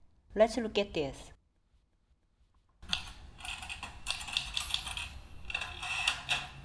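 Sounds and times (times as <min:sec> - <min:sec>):
speech: 0:00.4 - 0:01.4
manual typewriter typing: 0:02.8 - 0:06.6.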